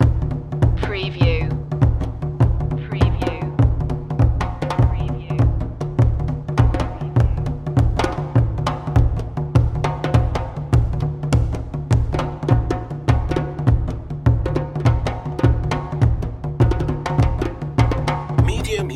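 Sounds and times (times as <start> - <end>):
African drums in a fusion loop: 0.0 - 18.9.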